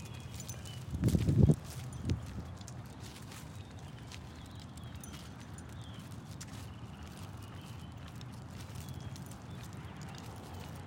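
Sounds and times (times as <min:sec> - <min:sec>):
dog shaking its harness during a night walk: 0:00.0 - 0:02.6, 0:04.9 - 0:05.7.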